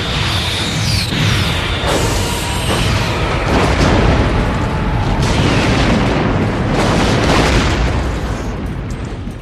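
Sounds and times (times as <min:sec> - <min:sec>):
crackling bursts: 0:00.0 - 0:09.4
sci-fi starship explosion booms: 0:02.7 - 0:09.4.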